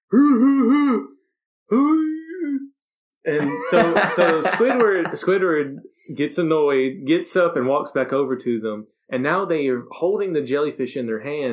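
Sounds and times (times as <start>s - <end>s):
speech: 0.1s - 1.1s, 1.7s - 2.6s, 3.2s - 11.5s
voice imitating guttural screams: 1.7s - 2.6s
laughter: 3.3s - 6.3s.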